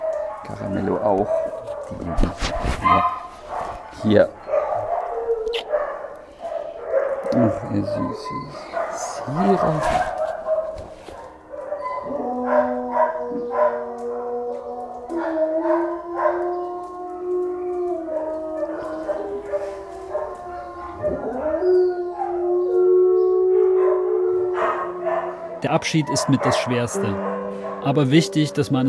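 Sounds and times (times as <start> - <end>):
short dog bark in a kennel: 0.0 - 13.8, 18.7 - 21.2, 23.8 - 25.4, 26.0 - 28.1
several dogs howling and whimpering in a kennel: 0.0 - 28.8
speech: 0.4 - 3.2, 4.0 - 4.4, 7.3 - 10.2, 25.8 - 28.8.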